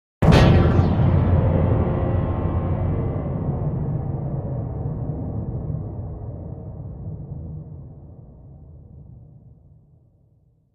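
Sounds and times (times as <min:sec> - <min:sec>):
metallic low-frequency impact: 0:00.2 - 0:07.6.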